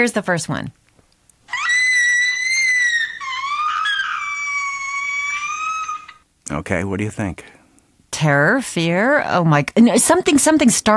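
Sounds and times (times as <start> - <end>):
speech: 0.0 - 0.8, 6.5 - 10.9
girl screaming with excitement while opening a present: 1.5 - 6.2.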